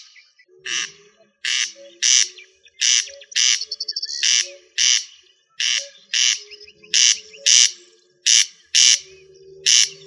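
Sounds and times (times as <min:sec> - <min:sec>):
rail producing rasping squawks: 0:00.7 - 0:10.0.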